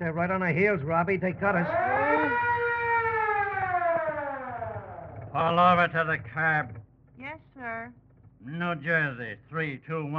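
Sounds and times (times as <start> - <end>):
speech: 0.0 - 2.5, 5.3 - 10.1
low engine rumble: 0.0 - 10.1
police siren wailing with tone gliding downward: 1.5 - 5.8.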